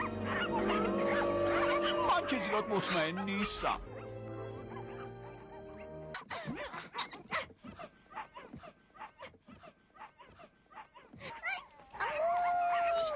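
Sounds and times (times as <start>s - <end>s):
wolf-like puppy howling: 0.0s - 5.9s, 10.8s - 13.1s
musical opening: 0.0s - 6.1s
speech: 2.3s - 3.9s.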